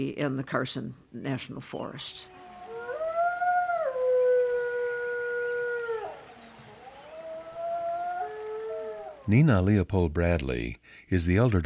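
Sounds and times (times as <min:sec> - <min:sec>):
speech: 0:00.0 - 0:02.4, 0:09.3 - 0:11.6
wolf howling: 0:02.1 - 0:09.3.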